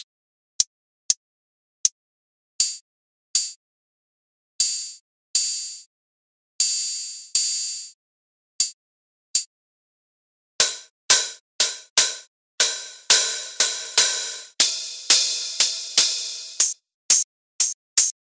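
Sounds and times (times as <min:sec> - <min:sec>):
solo hi-hat module: 0:10.6 - 0:18.1.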